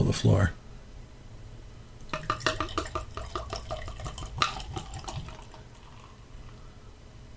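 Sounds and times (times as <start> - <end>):
beer pouring from a growler into a glass: 2.0 - 6.6.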